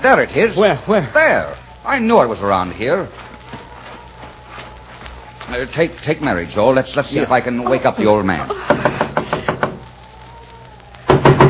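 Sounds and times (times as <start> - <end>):
speech: 0.0 - 3.3, 5.5 - 9.0
firm knocking on a door: 8.7 - 9.8, 11.1 - 11.4.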